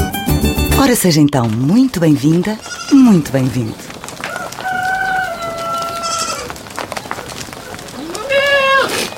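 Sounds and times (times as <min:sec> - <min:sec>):
rustling farmyard sounds in a Portuguese village: 0:00.1 - 0:09.1
speech: 0:00.8 - 0:03.9
rooster crowing in a Portuguese village: 0:04.2 - 0:06.6.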